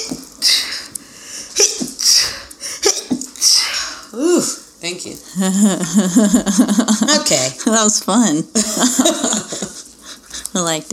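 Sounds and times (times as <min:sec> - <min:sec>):
person sneezing: 0:01.6 - 0:04.6
speech: 0:04.1 - 0:09.7, 0:10.6 - 0:10.9
laughter: 0:05.4 - 0:07.4, 0:08.6 - 0:10.3.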